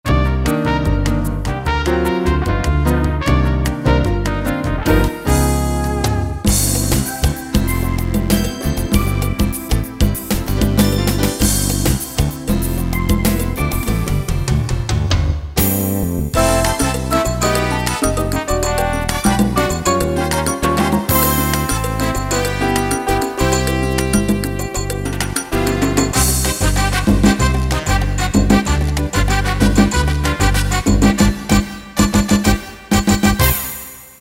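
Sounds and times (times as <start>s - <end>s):
Latin music on Roland EM-10: 0.0s - 34.1s.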